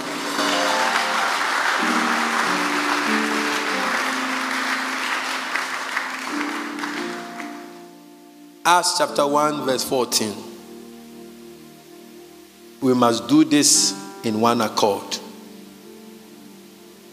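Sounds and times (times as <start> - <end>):
church audience clapping during prayer: 0.0 - 7.6
keyboard or organ playing sustained chords: 0.0 - 17.1
speech: 8.7 - 10.5, 12.8 - 15.2.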